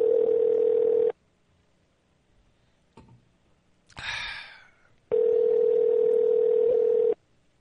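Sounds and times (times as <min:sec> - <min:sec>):
telephone ringback tone: 0:00.0 - 0:01.1, 0:05.1 - 0:07.2.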